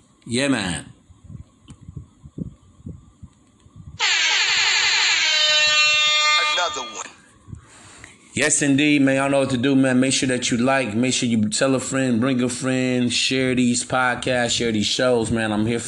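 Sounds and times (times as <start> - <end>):
speech: 0.2 - 0.9, 8.4 - 15.8
loud sustained air horn blast: 4.0 - 7.2.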